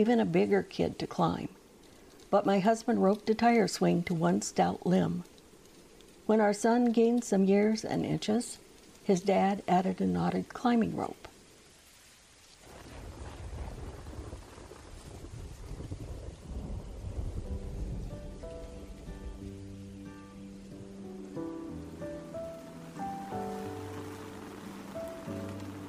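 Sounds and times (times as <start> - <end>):
speech: 0.0 - 1.6, 2.3 - 5.3, 6.3 - 11.3
steady rain hissing in a thunderstorm: 0.0 - 25.8
deep rolling rumble of thunder: 12.6 - 25.8
soft melodic tones: 17.7 - 25.8.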